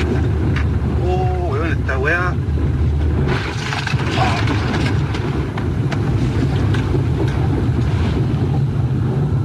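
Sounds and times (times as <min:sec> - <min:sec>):
rushing floodwater sweeping away a white utility van: 0:00.0 - 0:09.4.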